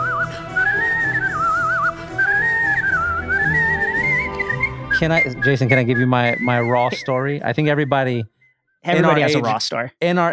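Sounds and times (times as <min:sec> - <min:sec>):
celebratory whistling: 0:00.0 - 0:09.5
speech: 0:05.0 - 0:10.3.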